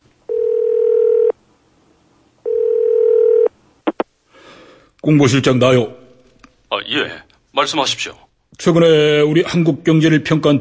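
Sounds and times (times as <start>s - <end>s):
telephone line tone while placing a call: 0.3s - 1.4s, 2.4s - 3.5s
speech: 5.0s - 6.0s, 6.9s - 10.5s.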